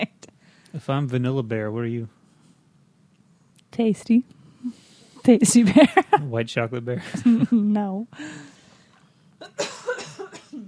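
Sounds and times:
speech: 0.7 - 2.2, 3.8 - 8.5
person coughing raspily: 9.4 - 10.6.

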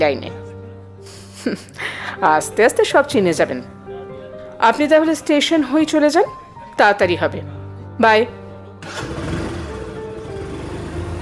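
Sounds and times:
speech: 0.0 - 0.4, 1.0 - 3.8, 4.6 - 9.1
old worn scooter engine buzzing on a small-town street: 8.8 - 11.1.

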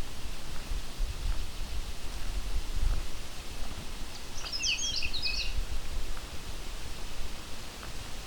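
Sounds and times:
constant rushing hiss: 0.0 - 8.2
Canada warbler singing: 4.1 - 5.6.

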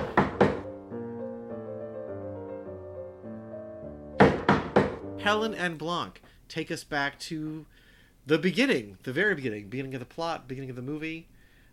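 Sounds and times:
sharp loud knocks on a door: 0.0 - 0.7, 4.2 - 5.0
speech: 5.2 - 11.3.

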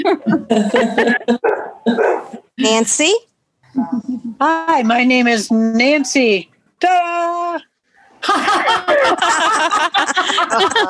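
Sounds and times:
laughter: 0.0 - 1.3, 8.2 - 10.8
speech: 0.0 - 10.8
dog barking and yipping: 1.4 - 2.4.

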